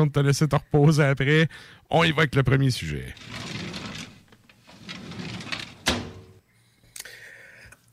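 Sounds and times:
speech: 0.0s - 3.6s
drawer scraping as it slides open: 3.2s - 6.4s.

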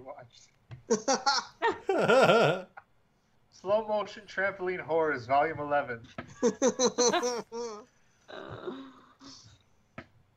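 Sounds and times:
speech: 0.0s - 2.7s, 3.7s - 9.4s
laughter: 0.9s - 2.6s, 6.4s - 7.8s
person coughing: 1.9s - 2.6s
raspy throat clearing: 1.9s - 2.7s.

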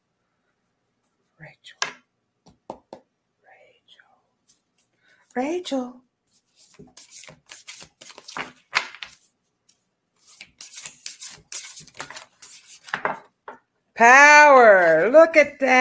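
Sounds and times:
speech: 1.4s - 2.0s, 5.4s - 6.0s, 14.0s - 15.7s
playing cards being gathered and handled during a card reading: 6.4s - 13.3s.

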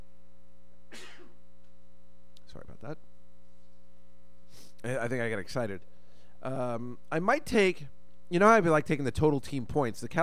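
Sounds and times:
low electrical hum: 0.0s - 10.2s
person sneezing: 0.9s - 1.4s
speech: 2.8s - 3.1s, 4.8s - 10.2s.

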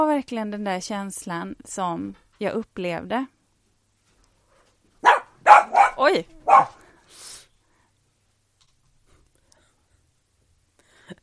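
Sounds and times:
speech: 0.0s - 3.4s, 5.5s - 7.3s
dog barking in a house: 5.0s - 6.8s.

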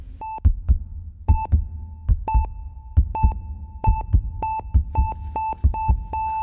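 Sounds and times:
heart beating in deep lub-dub thumps: 0.0s - 6.4s
sharp electronic monitor beeps: 2.3s - 6.4s.

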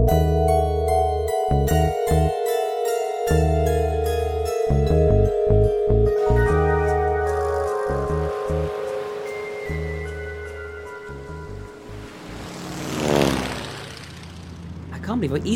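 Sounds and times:
propeller plane engine droning with a throbbing low pulse: 0.1s - 15.5s
speech: 15.2s - 15.5s.

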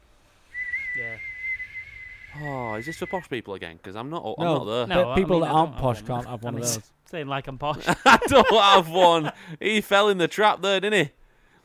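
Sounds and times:
person whistling a long high-pitched note imitating a stovetop kettle: 0.5s - 3.2s
speech: 2.4s - 11.2s
laughter: 7.7s - 9.4s.

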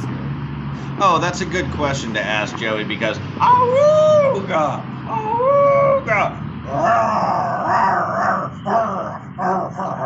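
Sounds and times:
speech: 1.0s - 10.0s
pack of angry dogs growling and snarling: 6.7s - 10.0s.

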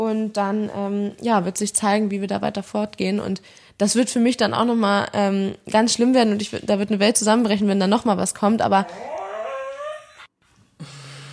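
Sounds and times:
speech: 0.1s - 9.2s
pet dog growling: 8.7s - 10.3s.

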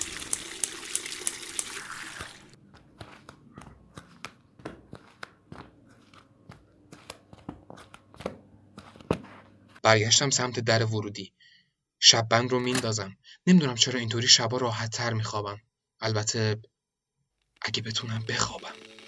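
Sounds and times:
water running into a cooking pot: 0.0s - 2.6s
speech: 9.8s - 11.4s, 12.0s - 16.7s, 17.6s - 18.8s.

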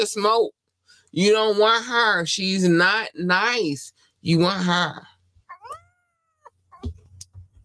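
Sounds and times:
speech: 0.0s - 5.1s
cat meowing: 5.5s - 7.0s.

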